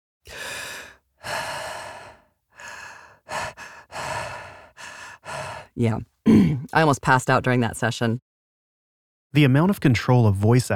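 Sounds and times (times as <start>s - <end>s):
heavy mouth breathing in a space suit: 0.3s - 6.7s
speech: 5.8s - 8.3s, 9.3s - 10.7s.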